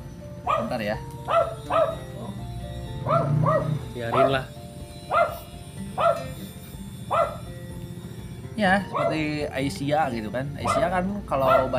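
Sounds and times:
dog barking in sharp yips: 0:00.4 - 0:02.1, 0:03.0 - 0:04.5, 0:05.1 - 0:06.4, 0:07.1 - 0:07.5, 0:08.9 - 0:09.2, 0:10.6 - 0:11.7
speech: 0:00.5 - 0:02.1, 0:03.0 - 0:05.4, 0:08.6 - 0:11.7.

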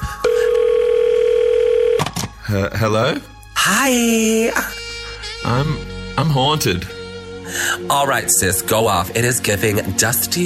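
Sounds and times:
telephone dial tone: 0:00.2 - 0:02.0
speech: 0:02.5 - 0:04.8, 0:05.4 - 0:06.9, 0:07.5 - 0:10.4.

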